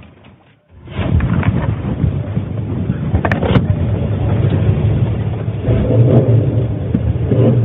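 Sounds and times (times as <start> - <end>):
old restored Chevrolet Chevelle muscle car engine revving at a speedway: 0.9 - 7.6.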